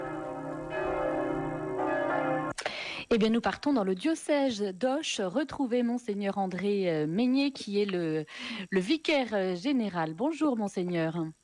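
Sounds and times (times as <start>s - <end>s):
church bells ringing in the diocese of Auch in the Gers: 0.0s - 2.6s
speech: 3.1s - 11.4s.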